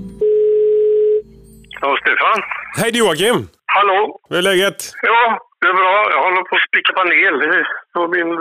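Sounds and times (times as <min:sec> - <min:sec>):
telephone ringback tone while placing a call: 0:00.2 - 0:01.3
speech: 0:02.1 - 0:08.3.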